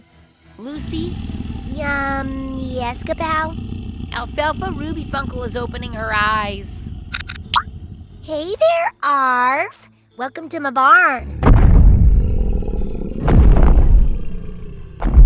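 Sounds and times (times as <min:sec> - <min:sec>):
speech: 0:00.6 - 0:06.9, 0:08.2 - 0:11.4
loud creature roar: 0:00.8 - 0:08.2, 0:11.9 - 0:15.1.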